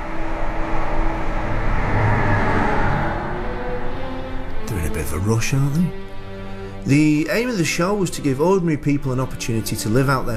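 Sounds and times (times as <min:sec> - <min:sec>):
train rolling past with rushing roar: 0:00.0 - 0:06.9
speech: 0:05.2 - 0:06.0, 0:06.8 - 0:10.3.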